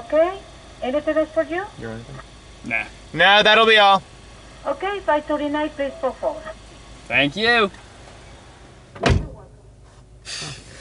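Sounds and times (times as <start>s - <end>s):
quiet interior hum: 0.0s - 10.7s
speech: 0.1s - 7.8s
door being pulled shut: 9.0s - 9.4s.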